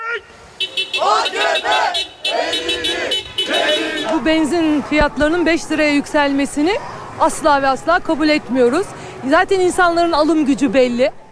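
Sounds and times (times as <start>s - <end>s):
car horns honking in support of a street protest: 0.0s - 4.7s
protest crowd of party members chanting slogans: 0.7s - 5.3s
speech: 4.1s - 11.2s.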